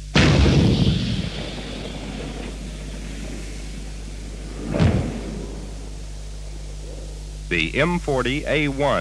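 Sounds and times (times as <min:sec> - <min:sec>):
105mm tank gun firing from an M60 main battle tank: 0:00.1 - 0:06.1
speech: 0:07.5 - 0:08.9.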